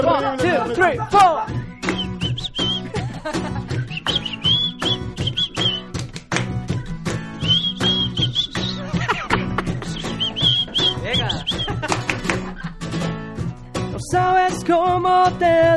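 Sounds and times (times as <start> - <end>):
speech: 0.0 - 1.6, 14.7 - 15.7
laughter: 0.0 - 5.5, 8.2 - 13.0
upbeat band music with a steady punchy beat: 0.0 - 15.7
person whistling a bright wavering melody: 1.4 - 3.0, 3.7 - 6.0, 7.4 - 9.0, 9.8 - 11.9.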